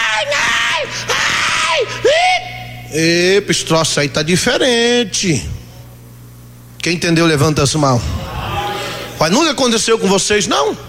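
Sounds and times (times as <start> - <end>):
group of people in an audience yelling and crying out: 0.0 - 2.6, 8.2 - 9.2
speech: 2.9 - 5.6, 6.8 - 8.3, 9.2 - 10.8.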